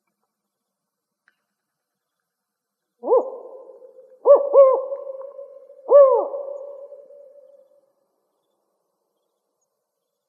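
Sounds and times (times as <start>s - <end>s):
spotted owl hooting in Arizona: 3.0s - 7.8s.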